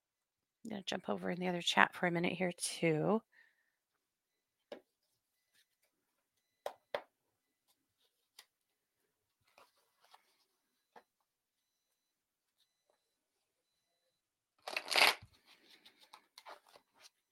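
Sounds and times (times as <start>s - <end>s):
speech: 0.7s - 3.3s
tarot deck riffled while being shuffled: 14.6s - 15.2s.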